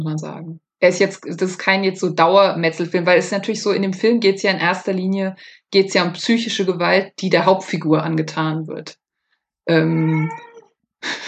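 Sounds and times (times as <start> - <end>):
speech: 0.0 - 9.0, 9.6 - 11.2
cat meowing: 9.8 - 10.7.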